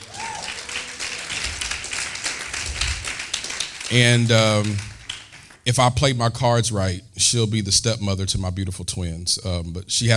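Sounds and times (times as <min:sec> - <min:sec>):
crowd applauding: 0:00.0 - 0:05.7
speech: 0:03.9 - 0:04.9, 0:05.6 - 0:10.1.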